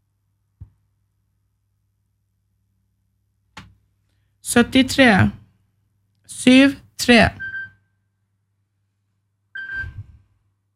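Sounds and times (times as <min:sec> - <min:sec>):
speech: 0:04.5 - 0:05.4, 0:06.4 - 0:07.4
telephone ringing during a bingo game: 0:09.6 - 0:10.0.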